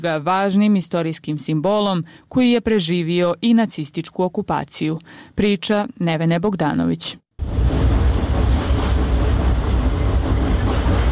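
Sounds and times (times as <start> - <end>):
speech: 0.0 - 7.7
tram rumbling across a river bridge: 7.4 - 11.1.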